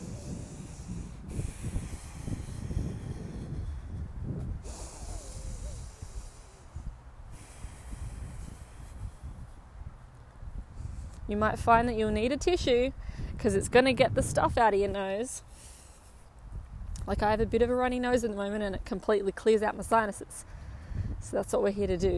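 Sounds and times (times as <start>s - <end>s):
long deep inhale through the nose during a breathing exercise: 0.0s - 9.4s
speech: 11.3s - 15.7s, 17.1s - 20.6s, 21.2s - 22.1s.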